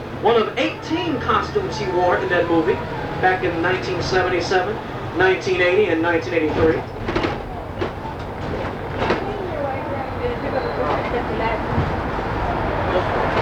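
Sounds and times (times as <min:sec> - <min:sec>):
elevated city train passing overhead: 0:00.0 - 0:13.4
speech: 0:00.2 - 0:07.0
clattering wheels of an elevated city train: 0:03.2 - 0:12.5.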